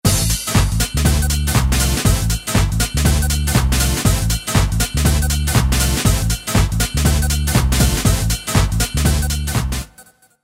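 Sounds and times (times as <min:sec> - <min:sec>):
US hard house music on a Roland D2: 0:00.0 - 0:10.0.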